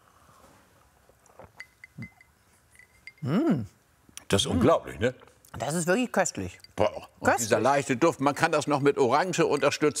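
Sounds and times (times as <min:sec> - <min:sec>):
glasses clinking in a toast: 0:01.5 - 0:03.4, 0:06.4 - 0:09.9
speech: 0:03.2 - 0:09.9.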